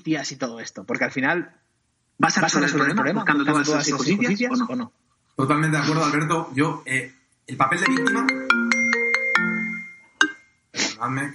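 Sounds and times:
speech: 0:00.0 - 0:01.6, 0:02.2 - 0:08.4, 0:11.0 - 0:11.3
mobile phone ringing with chiming electronic notes: 0:07.8 - 0:10.4.

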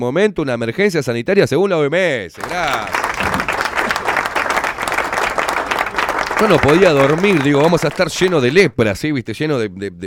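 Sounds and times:
speech: 0:00.0 - 0:03.4, 0:06.4 - 0:10.0
crowd applause: 0:02.4 - 0:08.7.

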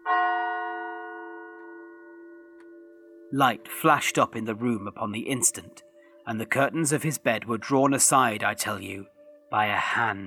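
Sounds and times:
clock bell striking the hour with a deep hollow tone: 0:00.0 - 0:05.6
speech: 0:03.3 - 0:10.2.

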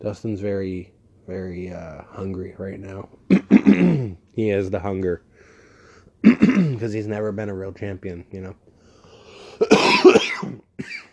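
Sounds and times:
speech: 0:00.0 - 0:05.3, 0:06.2 - 0:08.6, 0:09.4 - 0:11.1
harsh cough burst: 0:03.3 - 0:04.2, 0:06.2 - 0:06.9, 0:09.6 - 0:11.1.

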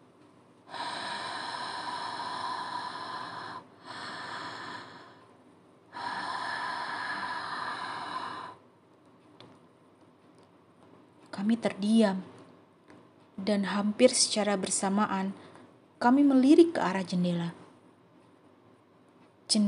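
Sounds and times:
long heavy noisy exhaled breaths: 0:00.7 - 0:05.3, 0:05.9 - 0:08.6
speech: 0:11.4 - 0:12.3, 0:13.5 - 0:15.4, 0:16.0 - 0:17.6, 0:19.5 - 0:19.6.

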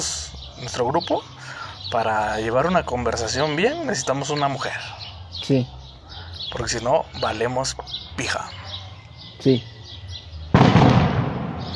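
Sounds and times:
speech: 0:00.0 - 0:05.8, 0:06.5 - 0:08.6, 0:09.4 - 0:09.7
gunshot with long rumbling echo: 0:10.5 - 0:11.7.

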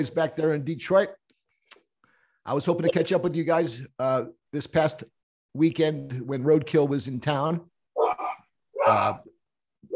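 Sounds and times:
speech: 0:00.0 - 0:01.2, 0:02.4 - 0:07.7, 0:08.8 - 0:09.3
dog barking: 0:08.0 - 0:09.0.

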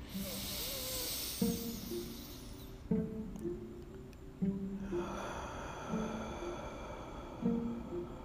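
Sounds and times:
deep breathing in through the nose and out through the mouth: 0:00.0 - 0:03.0, 0:04.7 - 0:08.2
faint tonal pulses: 0:00.0 - 0:08.2.

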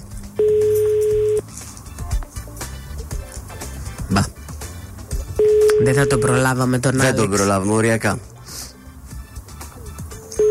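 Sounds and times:
phone line ringback tone on an unanswered call: 0:00.4 - 0:01.4, 0:05.3 - 0:06.6, 0:10.4 - 0:10.5
faint murmur: 0:01.4 - 0:05.5, 0:06.1 - 0:10.5
speech: 0:05.9 - 0:08.3.

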